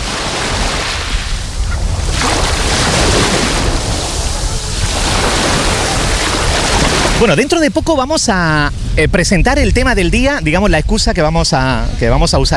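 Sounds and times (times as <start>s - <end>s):
Mediterranean Sea waves washing onto a shore: 0.0s - 9.0s
wind: 0.0s - 12.5s
speech: 7.2s - 12.5s.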